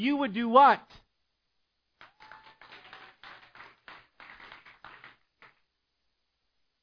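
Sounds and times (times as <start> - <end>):
speech: 0.0 - 1.0
audience clapping: 2.0 - 5.7.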